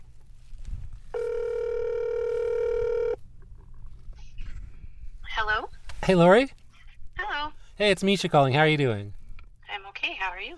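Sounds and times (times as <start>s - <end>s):
low rumble: 0.0s - 10.5s
ringback tone from an outgoing phone call: 1.2s - 3.2s
speech: 6.1s - 6.6s, 7.8s - 9.2s.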